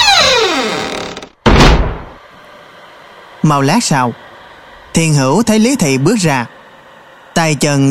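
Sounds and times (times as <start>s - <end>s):
heavy gate creaking open: 0.0s - 1.3s
speech: 3.5s - 4.3s, 5.0s - 6.6s, 7.4s - 7.8s.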